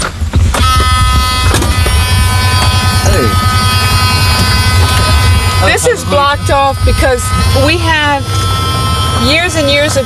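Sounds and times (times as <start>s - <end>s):
electric cart driving with high-pitched motor whine: 0.0s - 10.0s
speech: 5.8s - 8.5s, 9.2s - 10.0s.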